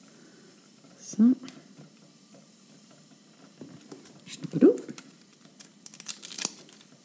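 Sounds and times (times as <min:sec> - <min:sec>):
speech: 0:01.1 - 0:01.6
papery skin peeled off a halved onion: 0:04.5 - 0:07.0.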